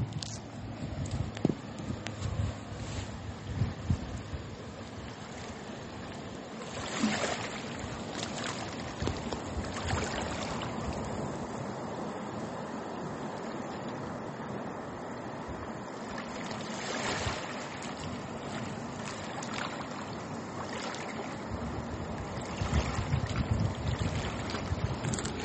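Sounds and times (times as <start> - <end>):
light breeze brushing the microphone: 0.0 - 11.8, 15.4 - 25.4
soft ocean waves washing along the shore: 0.0 - 25.4.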